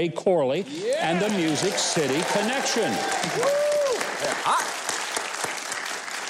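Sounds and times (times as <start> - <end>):
speech: 0.0 - 4.8
audience applause: 0.6 - 6.2
person whistling or cheering: 2.9 - 4.0.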